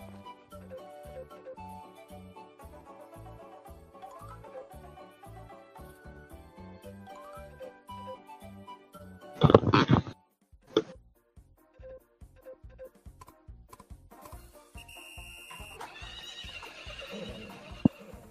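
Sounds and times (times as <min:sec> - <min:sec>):
speech: 0:09.4 - 0:09.6
horse snorting: 0:09.4 - 0:10.1, 0:16.6 - 0:18.2
rhythmic clip-clop hoofbeats: 0:15.2 - 0:18.2
horse whinnying in a video game: 0:15.8 - 0:18.2.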